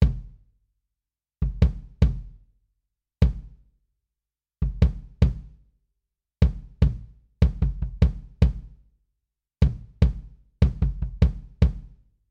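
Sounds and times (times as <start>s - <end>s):
kick drum: 0.0s - 0.4s, 1.4s - 2.4s, 3.2s - 3.6s, 4.6s - 5.6s, 6.4s - 8.8s, 9.6s - 12.0s.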